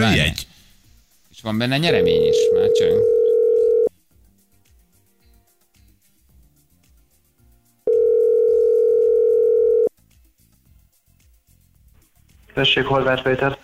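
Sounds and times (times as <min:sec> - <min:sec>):
speech: 0:00.0 - 0:00.5, 0:01.4 - 0:03.2, 0:12.6 - 0:13.6
telephone ringback tones: 0:02.0 - 0:03.9, 0:07.9 - 0:09.9.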